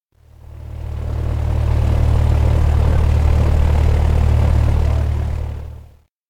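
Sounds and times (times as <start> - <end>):
far motor: 0.2 - 6.0.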